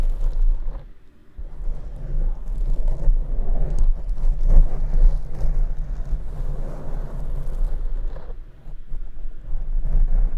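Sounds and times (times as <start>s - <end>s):
deep scratching on the microphone: 0.0s - 10.3s.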